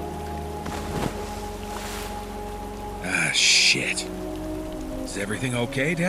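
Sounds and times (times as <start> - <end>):
wash of water around a fishing boat: 0.0 - 4.2
object knocked off a fishing boat splashing into the water: 0.6 - 2.3
speech: 3.3 - 4.4, 5.2 - 6.0.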